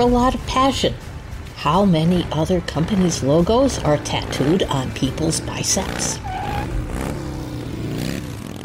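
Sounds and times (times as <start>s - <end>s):
speech: 0.0s - 6.8s
motorcycle engine revving with throaty rumble: 2.0s - 8.6s.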